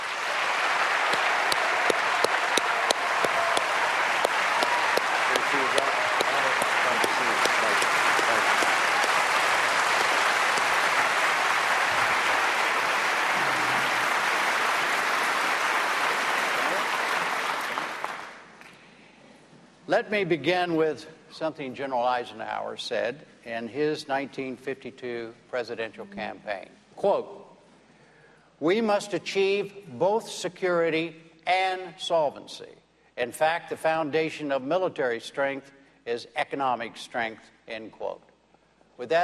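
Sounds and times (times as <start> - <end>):
large audience clapping for debate candidates: 0.0 - 18.8
speech: 20.0 - 27.4, 28.6 - 38.3, 39.0 - 39.2.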